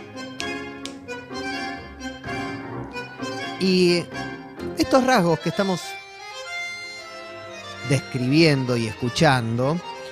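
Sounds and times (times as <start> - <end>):
tango-style instrumental ensemble music: 0.0 - 10.1
finger snaps marking the pulse: 0.2 - 1.2
speech: 3.6 - 4.2, 4.8 - 6.0, 7.9 - 9.9.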